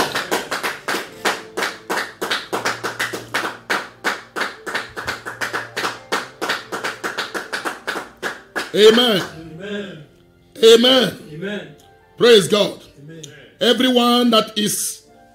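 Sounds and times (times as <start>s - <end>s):
audience clapping hands in a fast even rhythm: 0.0s - 9.4s
speech: 8.7s - 9.4s, 10.6s - 12.8s, 13.6s - 15.0s.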